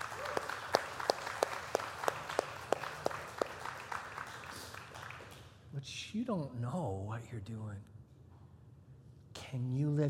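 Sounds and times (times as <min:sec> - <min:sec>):
audience applauding with steady rhythmic claps: 0:00.0 - 0:05.6
speech: 0:05.8 - 0:07.9, 0:09.5 - 0:10.0.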